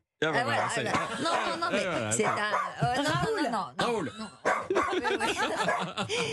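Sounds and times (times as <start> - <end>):
speech: 0.2 - 6.3
guard dog barking loudly: 0.4 - 2.8, 4.4 - 6.0
laughter: 0.4 - 6.3.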